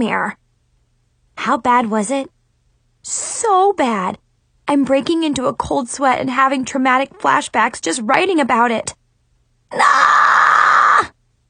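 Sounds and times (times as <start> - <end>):
speech: 0.0 - 0.4, 1.4 - 2.4, 3.0 - 9.0, 9.7 - 11.1
person screaming: 9.7 - 11.1.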